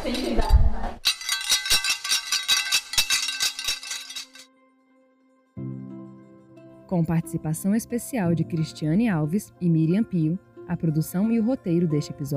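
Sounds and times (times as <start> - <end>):
sports medals clinking together: 1.0 - 4.5
speech: 6.9 - 12.3.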